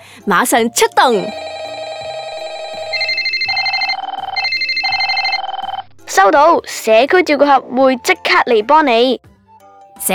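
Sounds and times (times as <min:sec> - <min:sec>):
speech: 0:00.2 - 0:01.4, 0:06.2 - 0:09.3
telephone ringing with an electronic warbling tone: 0:00.7 - 0:07.8.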